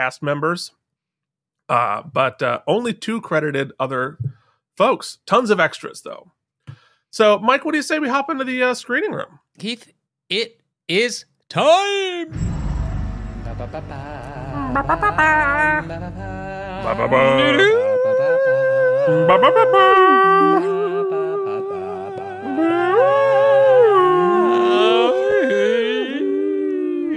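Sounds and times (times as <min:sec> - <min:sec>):
speech: 0:00.0 - 0:00.8, 0:01.7 - 0:06.4, 0:07.1 - 0:12.5, 0:13.6 - 0:17.8, 0:19.1 - 0:20.9
dogs howling: 0:16.9 - 0:27.1.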